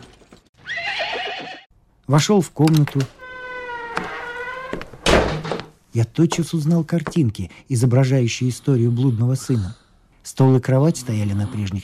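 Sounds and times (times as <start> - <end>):
horse whinnying at a small post station house: 0.6 - 1.7
speech: 2.1 - 3.2, 6.0 - 11.8.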